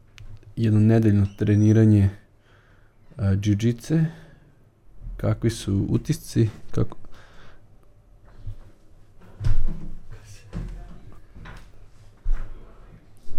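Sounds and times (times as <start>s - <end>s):
speech: 0.6s - 2.2s, 3.2s - 4.2s, 5.2s - 7.0s
door swinging shut with a dull thud: 9.2s - 11.7s.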